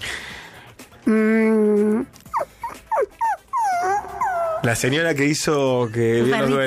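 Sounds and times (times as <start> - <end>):
speech: 1.1 - 1.4, 4.6 - 6.6
dog yelping and whimpering: 2.2 - 4.8.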